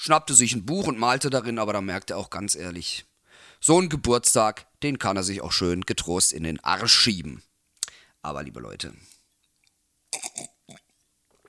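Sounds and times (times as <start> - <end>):
speech: 0.0 - 7.5, 8.2 - 9.1
person taking a sip of water: 9.3 - 11.4
faint mouth and swallowing sounds: 9.6 - 11.4.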